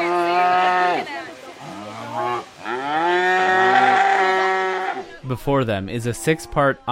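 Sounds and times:
restless cattle mooing before an obstacle-course competition: 0:00.0 - 0:05.1
speech: 0:05.3 - 0:06.9.

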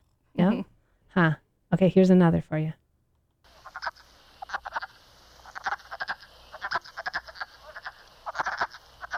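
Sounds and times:
speech: 0:00.4 - 0:02.8
chorus of wood frogs giving duck-like quacks: 0:03.4 - 0:09.1.

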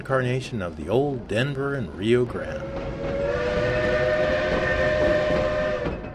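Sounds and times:
speech: 0:00.0 - 0:03.2
heavy rumble and clatter of a running train: 0:00.0 - 0:06.1
Baldwin steam locomotive whistle: 0:02.6 - 0:06.1.

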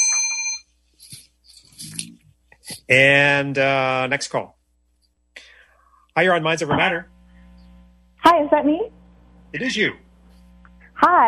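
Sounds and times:
bright bell ding marking a correct answer: 0:00.0 - 0:00.7
shuffling: 0:00.9 - 0:02.9
speech: 0:02.9 - 0:04.6, 0:06.2 - 0:07.1, 0:08.2 - 0:10.0, 0:11.0 - 0:11.2.

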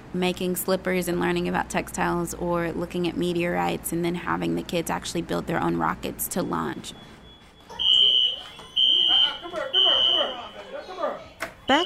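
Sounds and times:
speech: 0:00.1 - 0:07.2
fire alarm beeps: 0:06.8 - 0:10.7, 0:11.7 - 0:11.8
crowd chattering: 0:07.6 - 0:11.8.

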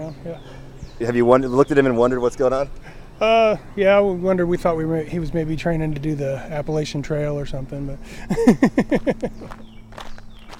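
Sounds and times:
speech: 0:00.0 - 0:09.7
laughter: 0:08.1 - 0:09.6
footsteps of people walking on a workout hike: 0:09.0 - 0:10.5
footstep scuffs: 0:09.2 - 0:10.5.

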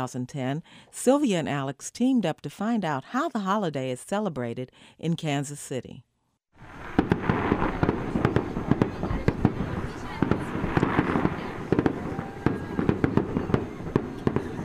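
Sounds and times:
speech: 0:00.0 - 0:06.7
fireworks bursting at a Diwali celebration outside a Hindu temple: 0:06.6 - 0:14.6.

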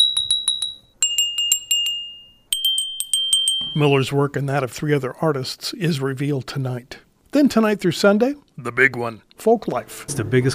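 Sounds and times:
metallic bells struck by ringers: 0:00.0 - 0:04.2
speech: 0:03.8 - 0:10.5.

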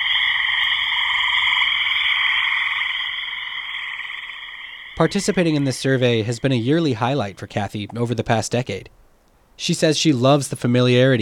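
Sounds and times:
chorus of frogs or toads calling: 0:00.0 - 0:07.2
speech: 0:05.0 - 0:09.0, 0:09.6 - 0:11.2.

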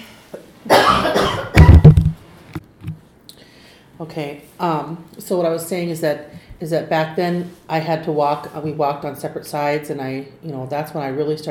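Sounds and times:
person having a coughing fit: 0:00.7 - 0:01.9
speech: 0:04.1 - 0:11.5.

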